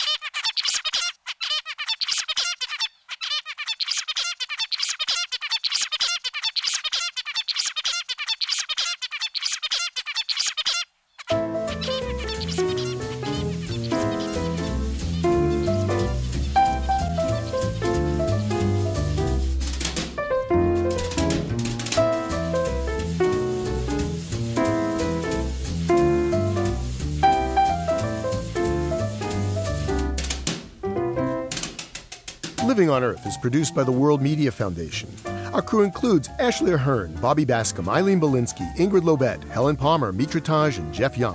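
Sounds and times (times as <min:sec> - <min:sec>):
adult zebra finch singing: 0:00.0 - 0:31.5, 0:32.6 - 0:41.3
music: 0:11.3 - 0:41.3
speech: 0:32.8 - 0:41.3.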